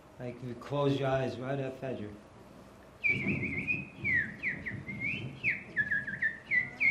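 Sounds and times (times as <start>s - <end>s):
speech: 0.2s - 2.3s, 3.0s - 3.8s
birds chirping and whistling: 3.0s - 6.8s.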